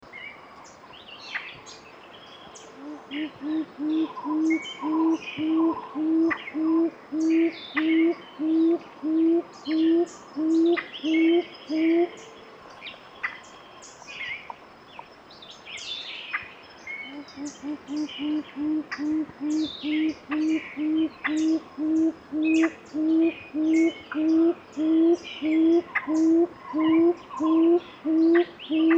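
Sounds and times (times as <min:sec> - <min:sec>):
Gray-fronted quail dove song: 0:02.4 - 0:12.4, 0:17.0 - 0:28.9.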